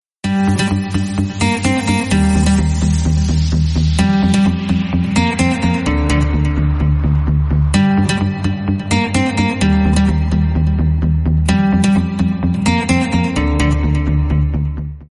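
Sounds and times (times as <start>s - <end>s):
DJ bass: 0.2s - 15.0s.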